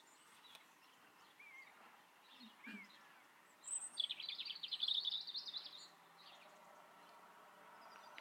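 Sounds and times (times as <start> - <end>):
birds singing outdoors: 0.0 - 8.1
faint bird calls: 0.2 - 6.4.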